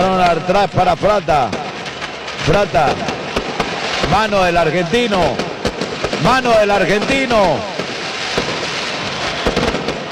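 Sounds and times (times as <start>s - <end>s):
fireworks exploding at a football match: 0.0s - 10.1s
speech: 0.2s - 1.6s, 2.4s - 3.2s, 4.1s - 5.5s, 6.2s - 7.7s.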